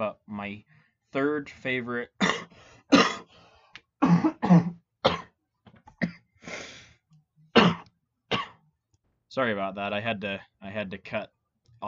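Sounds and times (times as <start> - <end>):
speech: 0.0 - 3.1, 9.4 - 11.8
person breathing: 0.7 - 1.0, 2.5 - 3.8, 6.4 - 7.1
person in a coughing fit: 2.2 - 3.3, 4.0 - 5.4, 6.0 - 6.3, 7.6 - 8.6.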